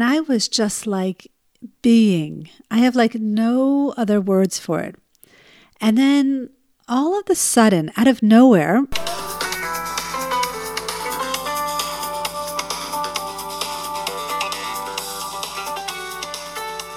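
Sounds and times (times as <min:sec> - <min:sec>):
speech: 0:00.0 - 0:05.0, 0:05.8 - 0:09.2
cell phone ringtone electronic melody: 0:09.0 - 0:16.9.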